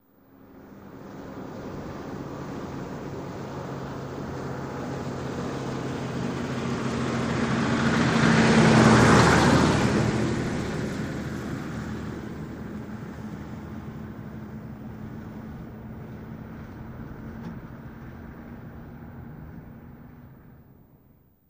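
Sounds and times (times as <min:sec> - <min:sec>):
diesel truck driving slowly: 0:00.2 - 0:21.3.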